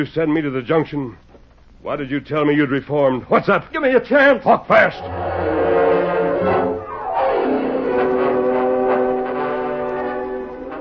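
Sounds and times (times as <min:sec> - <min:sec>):
speech: 0:00.0 - 0:05.6
approaching train horn blaring: 0:04.9 - 0:10.7
low rail rumble of approaching train: 0:04.9 - 0:10.7.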